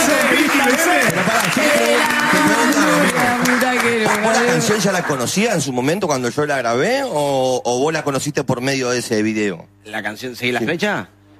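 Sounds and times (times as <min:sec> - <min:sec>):
audience applause: 0:00.0 - 0:05.9
speech: 0:04.6 - 0:11.2.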